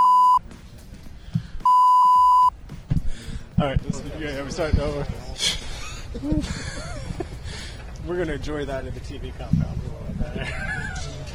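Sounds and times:
censor bleeps of a flat pure tone over a swear word: 0.0s - 0.4s, 1.7s - 2.5s
speech: 3.6s - 6.9s, 8.0s - 11.3s
laughter: 3.9s - 7.8s, 10.2s - 11.3s.

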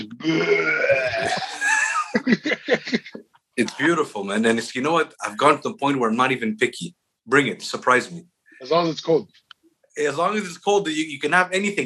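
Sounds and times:
loud rumbling burp after chugging beer: 0.0s - 1.8s
speech: 0.1s - 1.5s, 2.2s - 9.4s, 10.0s - 11.8s
person laughing: 0.2s - 3.8s.

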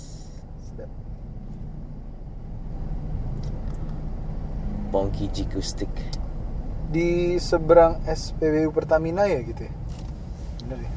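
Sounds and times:
idling and slowly moving cars in a traffic jam: 0.0s - 10.9s
speech: 4.9s - 6.2s, 6.9s - 9.7s.

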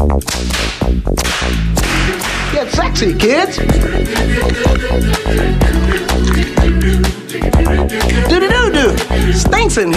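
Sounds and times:
steady tonal musical backing: 0.0s - 9.9s
speech: 0.1s - 1.2s, 2.6s - 6.2s, 7.8s - 9.9s
sharp loud slap sound effects: 0.2s - 2.9s.

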